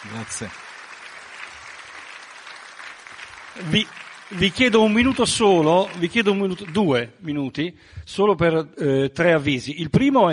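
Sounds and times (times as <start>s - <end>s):
speech: 0.0s - 0.7s, 3.6s - 10.3s
audience applause: 0.0s - 7.1s.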